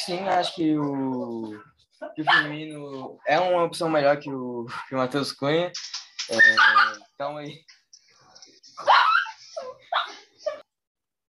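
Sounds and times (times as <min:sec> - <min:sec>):
speech: 0:00.0 - 0:07.8, 0:08.8 - 0:09.0
dog barking: 0:02.0 - 0:02.6, 0:06.4 - 0:07.0, 0:08.8 - 0:10.2.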